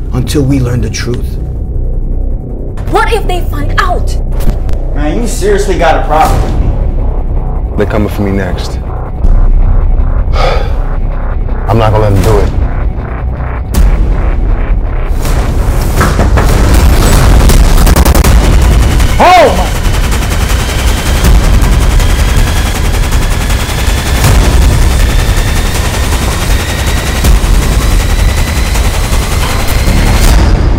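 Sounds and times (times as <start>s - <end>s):
speech: 0.2s - 1.5s, 2.9s - 4.2s, 5.0s - 6.6s, 7.8s - 8.8s, 11.8s - 12.6s
loud continuous rumbling din: 0.8s - 30.7s
gunshots: 15.1s - 30.7s.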